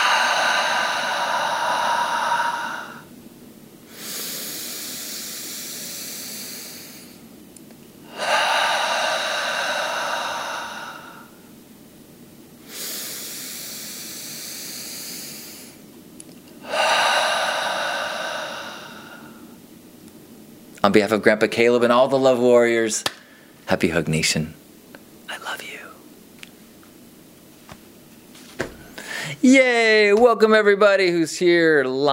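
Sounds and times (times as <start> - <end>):
deep breaths in through the nose and out through the mouth: 0.0 - 3.2, 3.9 - 7.3, 8.0 - 11.6, 12.6 - 15.8, 16.5 - 19.7, 28.7 - 29.4
speech: 20.8 - 24.6, 29.5 - 32.1.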